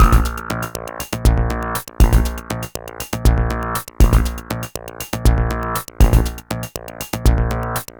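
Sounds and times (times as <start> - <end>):
drum beat: 0.0 - 2.6, 3.2 - 4.6, 5.2 - 6.5
percussion: 0.0 - 7.5.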